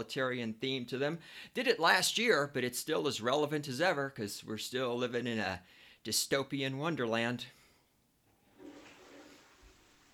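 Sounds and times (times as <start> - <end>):
speech: 0.0 - 7.6
toilet flushing: 8.3 - 10.1.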